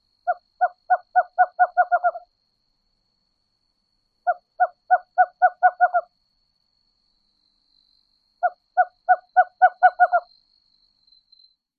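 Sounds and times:
Western Cowbird singing: 0.3 - 2.2, 4.3 - 6.1, 8.4 - 10.3.

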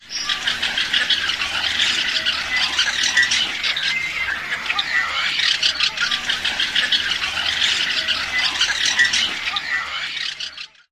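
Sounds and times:
flock of female Tricolored Blackbirds calling: 0.0 - 10.8.

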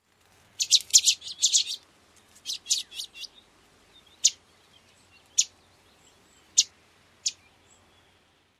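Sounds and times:
Chestnut-sided Warbler interaction calls: 0.6 - 8.3.

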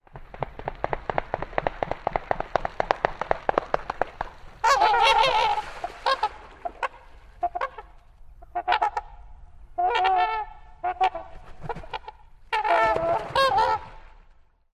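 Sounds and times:
trumpeter swan wing-flapping: 0.0 - 14.6
trumpeter swan calls: 3.1 - 14.4.

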